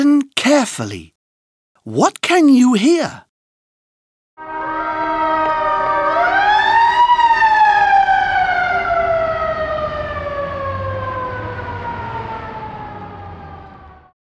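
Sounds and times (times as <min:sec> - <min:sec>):
speech: 0:00.4 - 0:01.2, 0:01.8 - 0:03.3
police car siren wailing: 0:04.7 - 0:14.1.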